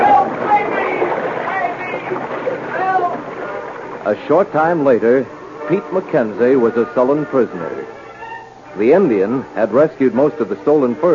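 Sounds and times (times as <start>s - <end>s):
water thrashing and churning: 0.0s - 7.5s
canoe tipping over: 0.0s - 11.1s
speech: 4.1s - 7.8s, 8.8s - 11.1s.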